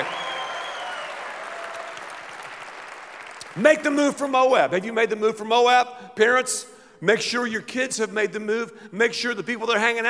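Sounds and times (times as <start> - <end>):
light polite golf-clap applause from a small group: 0.0 - 3.6
speech: 3.6 - 10.0.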